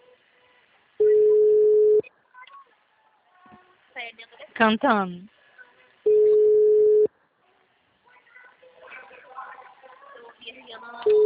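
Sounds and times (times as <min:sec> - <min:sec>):
telephone ringing tone as a call is placed: 0:01.0 - 0:02.0, 0:06.1 - 0:07.1
speech: 0:04.1 - 0:05.4.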